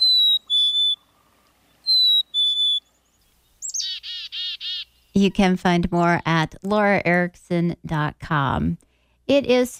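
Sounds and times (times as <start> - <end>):
black-capped chickadee calls: 0.0 - 6.2
speech: 5.2 - 9.7.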